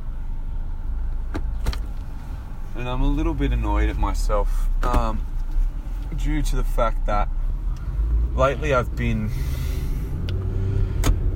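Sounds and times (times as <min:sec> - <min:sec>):
car driving with engine and road noise: 0:00.0 - 0:11.3
speech: 0:02.8 - 0:05.3, 0:06.1 - 0:07.4, 0:08.4 - 0:09.7.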